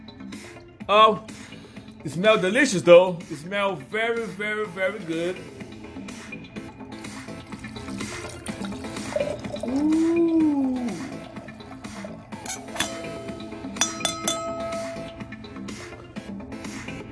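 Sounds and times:
speech: 0.9 - 1.4, 2.0 - 5.6, 9.7 - 10.7
wine pouring into a glass with gurgling: 7.0 - 12.2
light glassy clinks and taps: 12.4 - 15.5.

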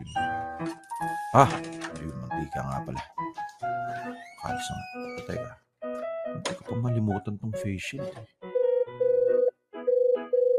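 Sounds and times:
speech: 0.1 - 1.7, 2.4 - 3.1, 4.4 - 5.6, 6.4 - 8.4
telephone ringing with an electronic warbling tone for an incoming call: 8.6 - 10.5.

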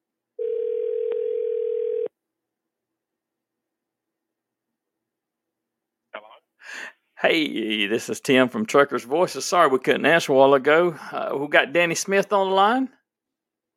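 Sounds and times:
telephone dial tone while placing a call: 0.4 - 2.1
speech: 7.2 - 13.0.

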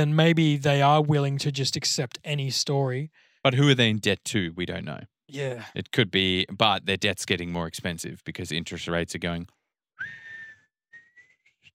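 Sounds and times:
speech: 0.0 - 10.2
person whistling a rising tone: 10.0 - 11.5.

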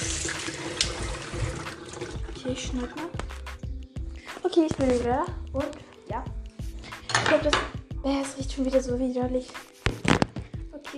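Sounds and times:
water running from a tap: 0.0 - 3.7
speech: 2.5 - 3.2, 4.6 - 6.4, 7.3 - 9.6.

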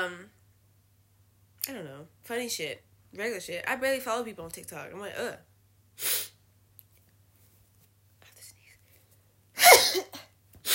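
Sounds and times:
speech: 1.7 - 6.3
loud explosive sneeze: 6.0 - 6.4, 9.6 - 10.7.

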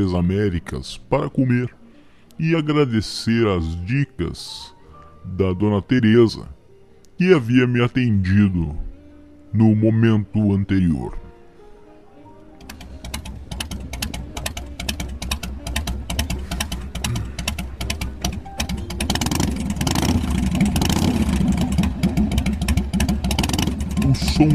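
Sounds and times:
speech: 0.0 - 1.8, 2.4 - 6.6, 7.2 - 8.9, 9.5 - 11.2
motorcycle engine revving: 12.6 - 24.5.

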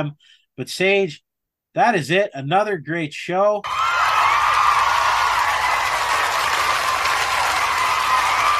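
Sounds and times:
speech: 0.0 - 1.2, 1.8 - 3.8
crowd applauding: 3.7 - 8.5.

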